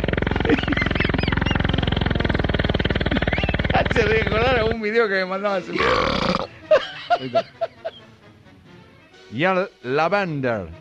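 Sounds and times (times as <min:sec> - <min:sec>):
loud rough burp: 0:00.0 - 0:04.4, 0:05.7 - 0:06.6
short croaky belch-like grunts: 0:00.0 - 0:04.8, 0:05.7 - 0:06.6
laughter: 0:00.2 - 0:02.1, 0:06.5 - 0:08.1
speech: 0:04.0 - 0:07.6, 0:09.3 - 0:10.8.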